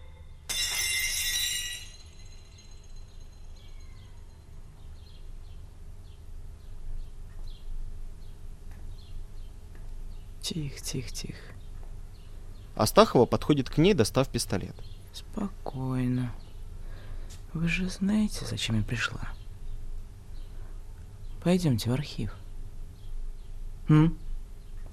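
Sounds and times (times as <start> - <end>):
china plate dropped by a woman shattering: 0.5 - 3.1
speech: 10.5 - 11.6, 12.8 - 16.4, 17.5 - 19.4, 21.4 - 22.4, 23.9 - 24.2.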